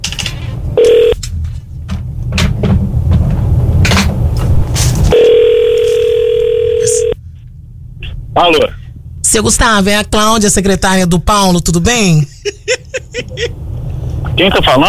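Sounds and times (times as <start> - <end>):
noisy background: 0.0 - 14.8
ringback tone of a phone call being placed again: 0.8 - 1.2, 5.1 - 7.2
speech: 8.4 - 12.6, 13.2 - 13.6, 14.3 - 14.8
laughter: 12.2 - 13.6.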